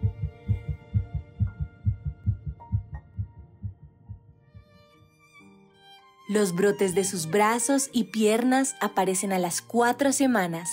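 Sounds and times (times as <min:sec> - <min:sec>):
heartbeat of an embryo about 22 days after fertilization: 0:00.0 - 0:04.7
speech: 0:06.3 - 0:10.7.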